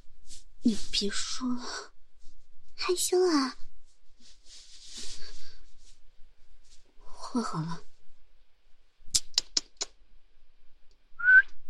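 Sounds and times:
speech: 0.6s - 1.9s, 2.8s - 3.6s, 7.3s - 7.9s
sharp clicks: 9.2s - 10.0s
person giving a short rising whistle: 11.2s - 11.6s.

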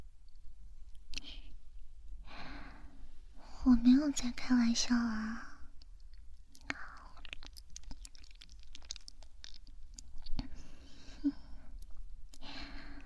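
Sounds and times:
faint breaths: 2.2s - 3.7s, 10.4s - 13.0s
speech: 3.6s - 5.5s
soft wet chewing of food being eaten: 5.8s - 12.4s.

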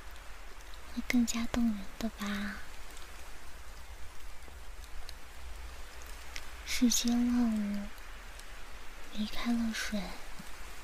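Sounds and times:
steady rain falling: 0.0s - 10.8s
speech: 1.0s - 2.7s, 6.7s - 8.0s, 9.2s - 10.2s.

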